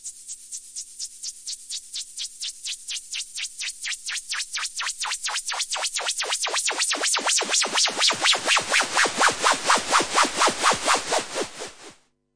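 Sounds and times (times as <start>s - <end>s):
Yamaha CS5 synthesizer noise sweeps: 4.6s - 12.0s.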